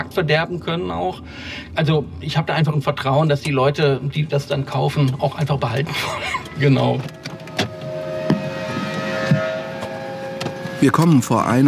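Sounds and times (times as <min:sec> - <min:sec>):
speech: 0:00.0 - 0:07.7, 0:10.8 - 0:11.6
truck hydraulic engine hum loading construction rubble: 0:05.9 - 0:11.6.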